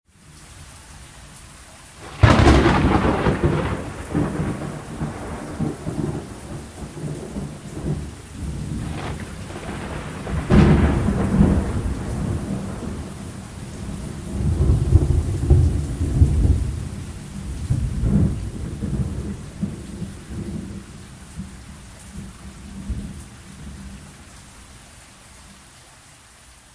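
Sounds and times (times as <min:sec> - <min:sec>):
frightening thunderclaps: 0:02.0 - 0:21.6.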